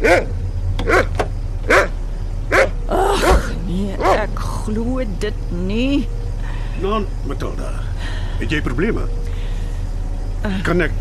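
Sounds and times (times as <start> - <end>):
dog barking by a car in the dark: 0.0 - 4.3
car engine idling: 0.0 - 10.9
speech: 4.7 - 6.2, 6.8 - 9.3, 10.4 - 10.9.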